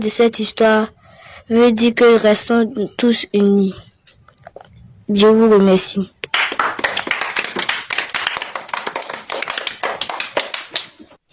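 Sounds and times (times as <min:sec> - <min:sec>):
speech: 0:00.0 - 0:03.9, 0:05.1 - 0:06.2
children clapping: 0:06.2 - 0:11.1.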